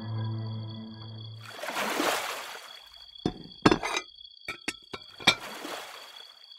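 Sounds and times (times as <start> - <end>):
water rushing: 1.4 - 3.9, 4.5 - 6.2
dirty drinking glasses clinking together: 3.3 - 5.5.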